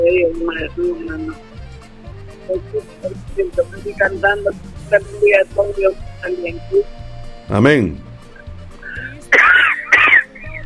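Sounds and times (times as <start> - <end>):
faint tonal hum: 0.0 - 7.4
speech: 0.5 - 1.7, 2.5 - 8.0
woman clearing throat: 9.0 - 10.5
woman coughing with a badly affected throat: 9.2 - 10.5.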